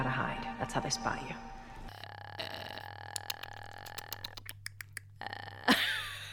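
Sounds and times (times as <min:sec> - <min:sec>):
speech: 0:00.6 - 0:01.6
voice imitating an infected creature's clicking: 0:02.4 - 0:05.7.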